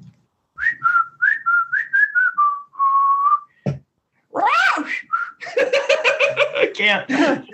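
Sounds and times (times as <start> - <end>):
person whistling mimicking a parrot: 0.6 - 3.6, 4.9 - 5.4
loud laughter: 5.4 - 7.5.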